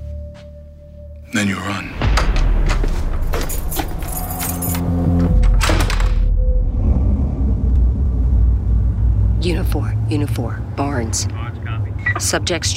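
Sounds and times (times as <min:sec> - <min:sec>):
steady low rumble: 0:02.0 - 0:12.7
car keys jangling as they are handed over: 0:03.4 - 0:05.0
speech: 0:09.7 - 0:11.6, 0:12.2 - 0:12.7.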